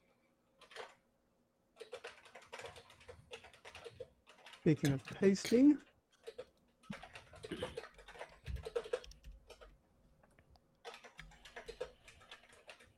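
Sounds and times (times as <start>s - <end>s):
typing on a computer keyboard: 0.6s - 1.0s, 1.8s - 4.7s, 6.1s - 9.8s, 10.8s - 12.9s
speech: 4.6s - 5.9s.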